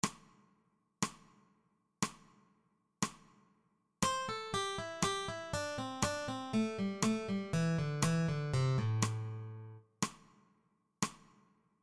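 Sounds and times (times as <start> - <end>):
blues pentatonic melody: 4.0 - 9.8.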